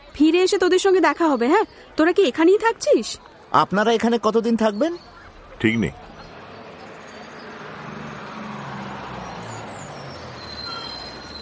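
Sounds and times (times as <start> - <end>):
road noise: 0.0 - 11.3
speech: 0.3 - 6.1
arriving bus engine rumble: 5.2 - 11.3
bus brakes squealing: 6.1 - 11.3.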